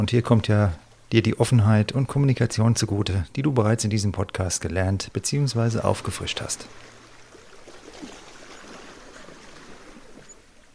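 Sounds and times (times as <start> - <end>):
speech: 0.0 - 6.9
calm sea waves on a beach: 5.4 - 10.7.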